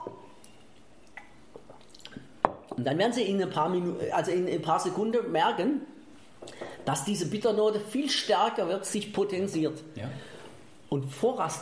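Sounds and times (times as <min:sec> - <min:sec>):
person sipping and swallowing a mouthful of water: 0:00.2 - 0:02.4
soft wet mouth clicks: 0:00.4 - 0:02.3
speech: 0:02.8 - 0:05.9, 0:06.5 - 0:10.3, 0:10.9 - 0:11.6.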